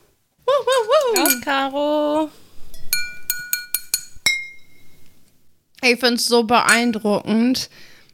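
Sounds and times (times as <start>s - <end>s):
glasses clinking in a toast: 0.8s - 1.7s, 2.7s - 5.0s, 6.7s - 7.0s
speech: 1.1s - 2.4s, 5.8s - 7.9s.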